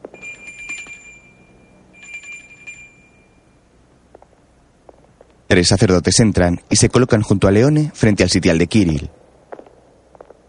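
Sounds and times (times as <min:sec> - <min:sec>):
small hand bell rung by a cardinal at the Sistine Chapel doors: 0:00.0 - 0:03.6
speech: 0:05.5 - 0:09.2.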